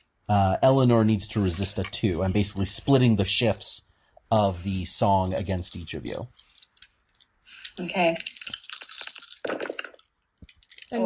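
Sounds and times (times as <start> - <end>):
speech: 0.3 - 6.4, 7.8 - 8.3
dice clattering out of a box across a hard surface: 8.1 - 11.0.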